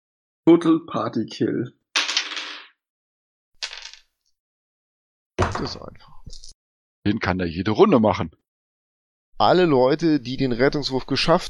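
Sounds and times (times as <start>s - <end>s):
speech: 0.5s - 1.8s, 5.6s - 8.4s, 9.4s - 11.4s
dice clattering across a hard tabletop in a role-playing game: 2.0s - 2.8s, 3.6s - 4.2s.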